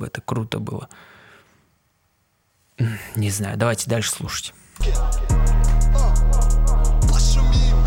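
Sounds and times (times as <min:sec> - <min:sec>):
speech: 0:00.0 - 0:01.2, 0:02.8 - 0:05.3
crisp hi-hats ticking: 0:04.8 - 0:07.8
rap track hip-hop beat: 0:04.8 - 0:07.8.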